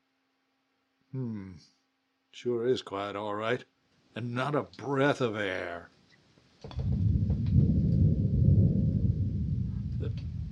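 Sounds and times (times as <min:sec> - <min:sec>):
speech: 0:01.1 - 0:05.9, 0:06.6 - 0:07.0
faint crackles: 0:06.1 - 0:10.4
thunder rumbling as a storm approaches under low clouds: 0:06.7 - 0:10.4.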